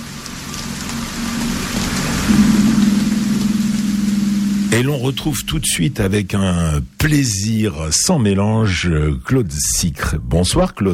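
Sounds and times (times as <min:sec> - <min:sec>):
rain falling on the sea: 0:00.0 - 0:09.0
low sustained droning tone in a film score: 0:01.8 - 0:06.9
speech: 0:04.7 - 0:10.9.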